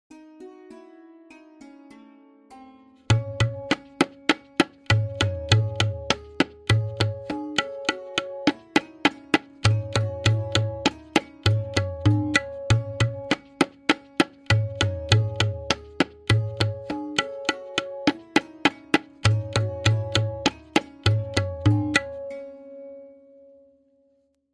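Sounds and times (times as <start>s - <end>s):
lehra melody accompanying tabla: 0.1s - 23.8s
tabla playing a kaida variation in tintal: 3.1s - 22.4s.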